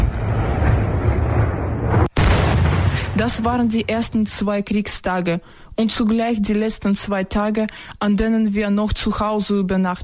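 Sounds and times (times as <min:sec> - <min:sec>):
artillery explosions from attacks on a city at night during curfew: 0:00.0 - 0:04.4
speech: 0:03.2 - 0:10.0.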